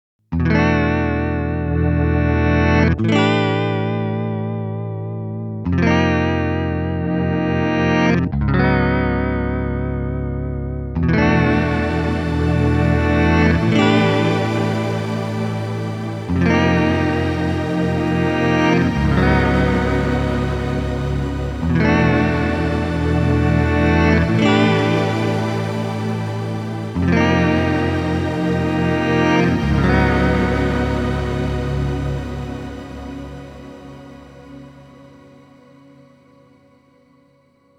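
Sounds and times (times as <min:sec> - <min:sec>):
KORG Luminance electric guitar: 0:00.4 - 0:36.5.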